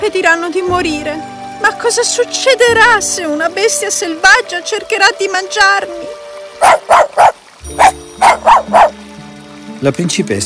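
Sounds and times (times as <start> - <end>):
speech: 0.0 - 6.7, 9.8 - 10.4
small dog barking in high yaps: 6.6 - 9.0.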